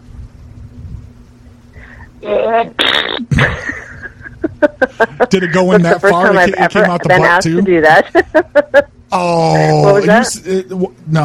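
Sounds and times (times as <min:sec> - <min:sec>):
person blowing a buzzy raspberry with lips imitating a fart: 0:01.8 - 0:03.4
speech: 0:02.2 - 0:03.7, 0:04.8 - 0:11.2
laughter: 0:03.3 - 0:10.2.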